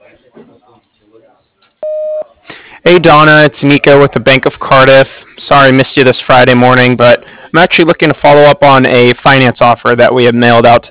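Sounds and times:
answering machine beep on an office desk phone: 1.8 - 2.3
speech: 2.8 - 10.8.

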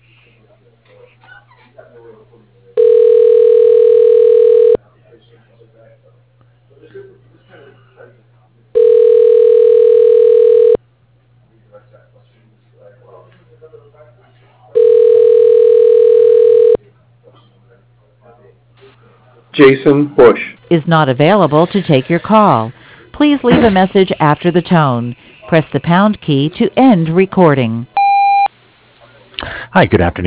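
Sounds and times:
telephone ringback tone while a call is put through: 2.8 - 4.8, 8.8 - 10.8, 14.8 - 16.8
speech: 19.6 - 27.9, 29.8 - 30.2.

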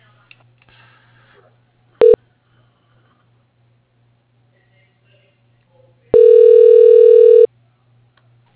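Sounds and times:
telephone beep as a call is transferred to voicemail: 6.2 - 7.5.

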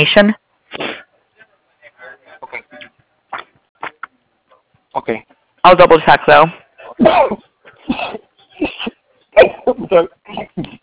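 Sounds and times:
speech: 0.0 - 0.4, 5.0 - 8.7, 9.4 - 10.8
person sneezing: 0.7 - 1.1, 6.8 - 10.6.

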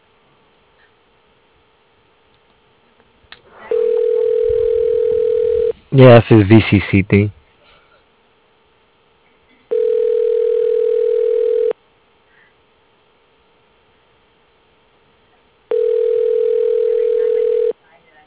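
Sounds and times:
faint noise: 0.0 - 18.2
telephone buzzing tones while dialing out: 3.7 - 5.8, 9.7 - 11.8, 15.7 - 17.8
speech: 6.0 - 7.4.

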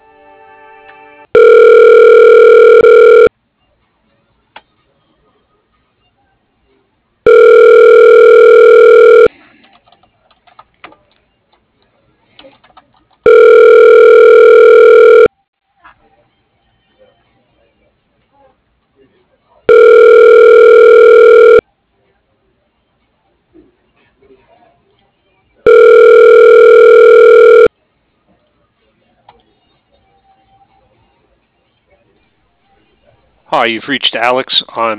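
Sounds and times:
telephone line tone as a call is transferred to voicemail: 1.4 - 3.3, 7.3 - 9.3, 13.3 - 15.3, 19.7 - 21.6, 25.7 - 27.7
speech: 33.6 - 34.9.

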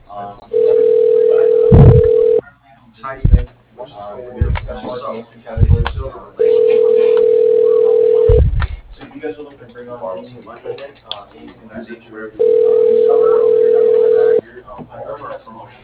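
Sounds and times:
people talking: 0.1 - 15.8
telephone ringback tones through a phone line: 0.5 - 2.4, 6.4 - 8.4, 12.4 - 14.4.

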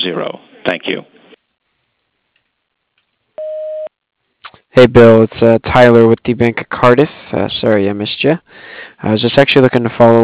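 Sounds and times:
speech: 0.1 - 0.5, 4.8 - 10.2
voicemail beep after an outgoing greeting: 3.4 - 3.9.

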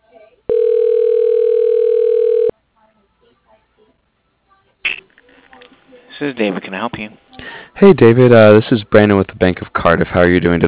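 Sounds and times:
office phone system telephone tone dialing an extension: 0.5 - 2.5
speech: 6.2 - 10.6.

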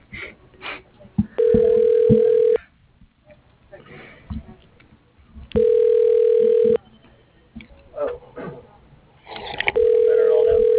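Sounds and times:
telephone ringback tone as a call is transferred to an extension: 1.4 - 2.6, 5.6 - 6.8, 9.8 - 10.7.

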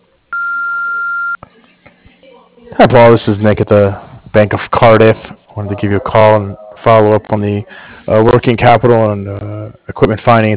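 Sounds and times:
answering machine beep: 0.3 - 1.4
speech: 2.8 - 10.5.

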